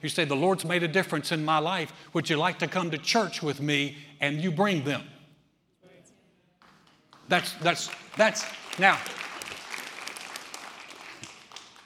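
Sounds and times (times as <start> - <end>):
speech: 0.0 - 5.1, 7.3 - 9.2
soft polite applause from an audience: 7.2 - 11.8.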